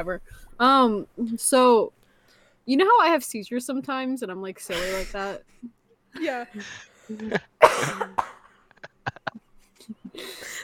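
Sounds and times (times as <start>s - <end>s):
speech: 0.0s - 2.0s, 2.6s - 8.3s
person coughing: 4.7s - 5.2s, 7.3s - 8.5s
laughter: 8.7s - 9.5s.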